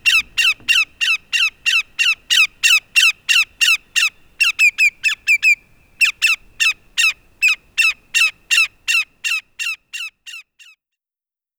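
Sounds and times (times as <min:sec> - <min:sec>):
Greater yellowlegs giving ringing downslurred whistles: 0:00.0 - 0:09.0.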